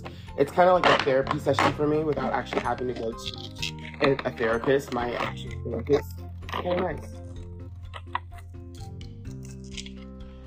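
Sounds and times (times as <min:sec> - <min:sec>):
speech: 0:00.4 - 0:07.2
scissors snipping open a card envelope: 0:00.6 - 0:10.4.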